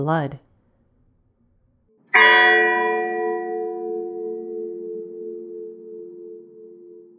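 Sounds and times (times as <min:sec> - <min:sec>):
speech: 0:00.0 - 0:00.4
single deep bell struck and ringing: 0:02.1 - 0:07.1.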